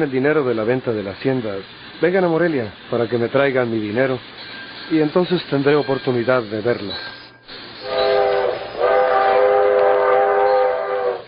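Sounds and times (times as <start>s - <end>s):
speech: 0.0s - 7.2s
departing train sounding its horn: 7.8s - 11.2s.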